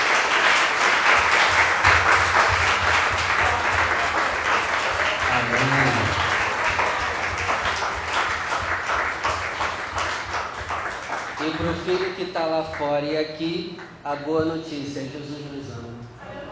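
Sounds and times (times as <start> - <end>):
large crowd applauding: 0.0 - 12.8
speech: 12.4 - 15.8.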